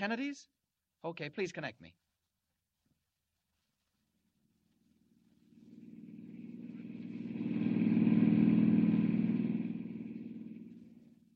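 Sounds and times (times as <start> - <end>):
speech: 0.0 - 2.0
car engine rumbling past on a dusty road: 5.7 - 11.2.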